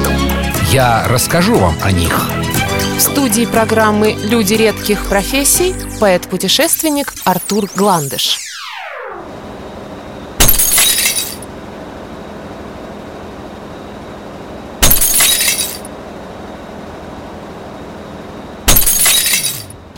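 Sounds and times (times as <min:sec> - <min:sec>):
speech: 0:00.7 - 0:08.4
glass shattering: 0:10.4 - 0:11.5, 0:14.8 - 0:15.9, 0:18.7 - 0:19.8.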